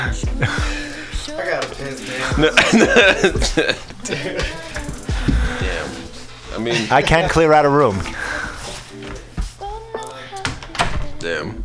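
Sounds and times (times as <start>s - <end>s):
murmur of room noise: 0.0s - 11.6s
speech: 0.1s - 4.8s, 6.6s - 8.2s, 11.2s - 11.6s
laughter: 2.1s - 5.1s
door opening and shutting: 10.4s - 11.2s.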